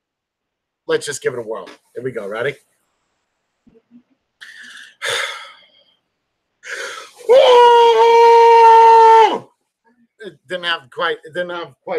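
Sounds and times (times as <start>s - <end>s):
speech: 0.9s - 2.7s, 10.2s - 11.9s
sharp breaths: 4.4s - 5.9s, 6.6s - 7.3s
long loud muffled yell into a pillow: 7.2s - 9.5s.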